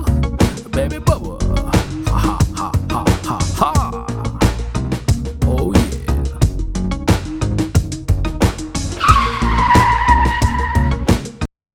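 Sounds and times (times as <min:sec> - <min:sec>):
thumping music bed with steady beats: 0:00.0 - 0:11.5
speech: 0:00.8 - 0:01.4
car tire screech sound effect: 0:09.0 - 0:11.1.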